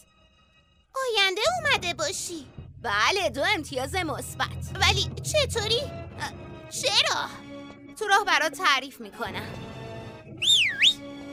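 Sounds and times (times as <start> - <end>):
speech: 1.2 - 7.4, 8.0 - 9.6
person whistling a short two-part note: 10.4 - 11.1.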